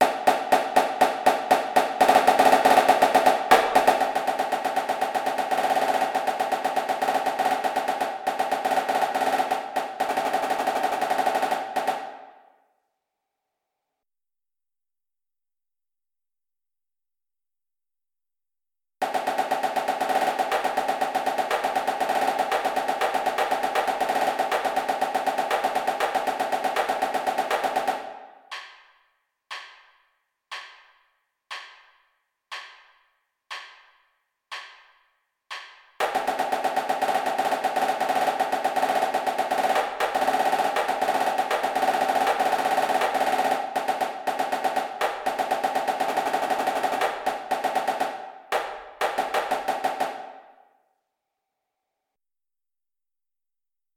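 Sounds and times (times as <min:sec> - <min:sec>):
drumline snare cadence: 0:00.0 - 0:12.3, 0:19.0 - 0:28.9, 0:35.5 - 0:50.6.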